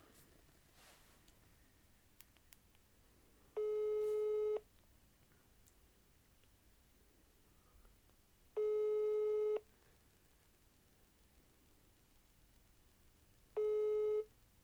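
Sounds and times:
telephone ringback tone of an outgoing call: 3.6 - 4.6, 8.6 - 9.6, 13.6 - 14.3.

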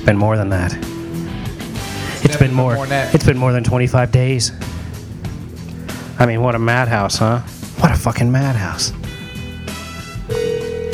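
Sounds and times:
speech: 0.0 - 0.9, 2.4 - 4.8, 6.2 - 9.0
outgoing phone call electronic ringback tone: 10.3 - 10.9.

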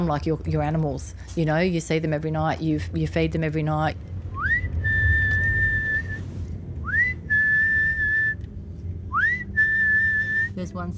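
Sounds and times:
speech: 0.0 - 4.1, 10.6 - 10.9
low outdoor rumble: 0.0 - 10.9
person whistling to call street cats: 4.4 - 8.4, 9.1 - 10.6.

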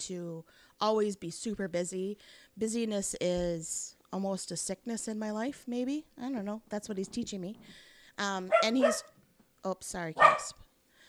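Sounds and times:
speech: 0.0 - 10.6
dog barking: 8.5 - 9.2, 10.2 - 10.6.

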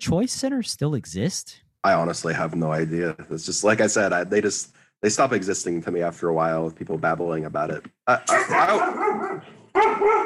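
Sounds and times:
speech: 0.0 - 10.2
dog barking at a delivery person: 8.3 - 10.2.

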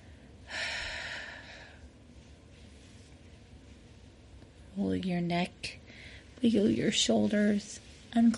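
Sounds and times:
deep breath in and out during a guided relaxation exercise: 0.0 - 1.9
speech: 4.8 - 8.3.

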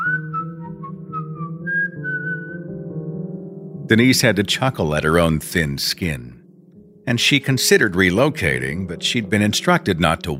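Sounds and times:
person whistling aimlessly with no recognizable tune: 0.0 - 2.7
speech: 3.9 - 6.4, 7.1 - 10.3.

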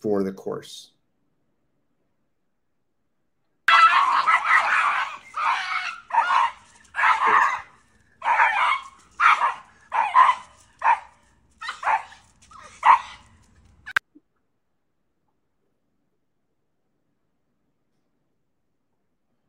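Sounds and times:
speech: 0.0 - 1.0
leash-reactive dogs barking: 3.7 - 14.0.

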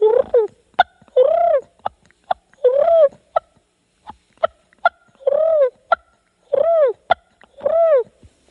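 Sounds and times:
person imitating a turkey feeding purr: 0.0 - 1.7, 4.8 - 8.0.

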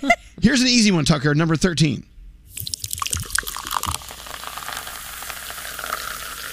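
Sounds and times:
speech: 0.0 - 2.1
fizzing bubbles of a poured drink: 2.5 - 6.5
liquid pouring into a glass: 2.5 - 6.5.

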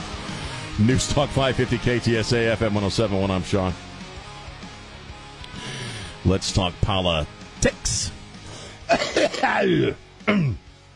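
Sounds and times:
speech: 0.8 - 3.9, 6.3 - 8.2, 8.9 - 10.6
phlegmy cough and throat-hacking: 8.9 - 10.6.

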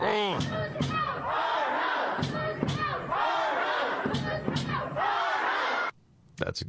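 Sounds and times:
loud agitated crowd shouting and chanting: 0.0 - 6.0
protesters pounding on glass doors: 0.4 - 1.2, 2.1 - 4.9.

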